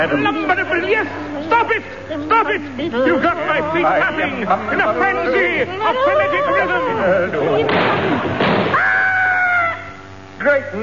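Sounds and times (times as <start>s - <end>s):
speech: 0.0s - 8.5s, 10.4s - 10.8s
laughter: 0.8s - 8.5s
comic sound-effect explosion of boots: 7.7s - 9.2s.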